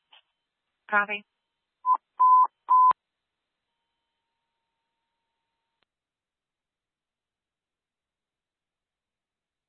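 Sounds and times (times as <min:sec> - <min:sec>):
speech: 0:00.9 - 0:01.3
radio test tone beeps for a station check: 0:01.9 - 0:03.0.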